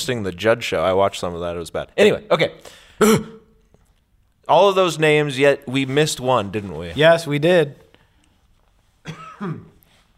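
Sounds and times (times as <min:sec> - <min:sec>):
speech: 0:00.0 - 0:03.4, 0:04.5 - 0:07.8, 0:09.0 - 0:09.7
person coughing: 0:03.0 - 0:03.6, 0:09.0 - 0:09.8.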